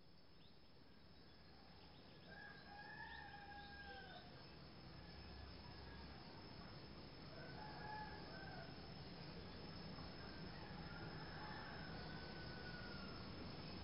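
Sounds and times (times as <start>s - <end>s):
steady background noise: 0.0s - 13.8s
chicken crowing in the countryside east of Ubud in Bali Indonesia: 2.3s - 4.3s, 7.3s - 8.7s, 10.5s - 13.2s.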